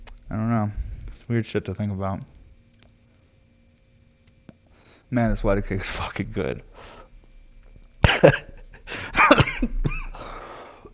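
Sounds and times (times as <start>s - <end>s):
speech: 0.3s - 2.4s, 5.1s - 7.0s, 8.2s - 8.5s
person coughing after exhaling cannabis smoke the wrong way: 8.0s - 10.3s.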